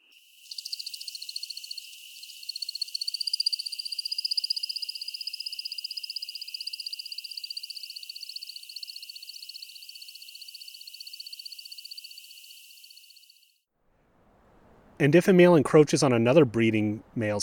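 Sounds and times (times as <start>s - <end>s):
male American woodcock courtship flight song of liquid chirps: 0.0s - 13.2s
speech: 15.0s - 17.4s.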